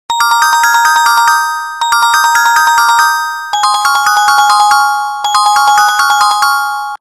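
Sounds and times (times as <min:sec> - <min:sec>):
Sanyo E4100 melodic bell tone: 0:00.1 - 0:06.9.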